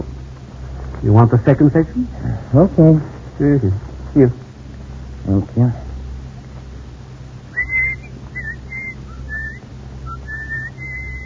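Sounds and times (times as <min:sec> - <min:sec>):
steady low hum: 0:00.0 - 0:11.2
speech: 0:01.0 - 0:04.4, 0:05.2 - 0:05.8
person whistling a short melody: 0:07.6 - 0:11.2.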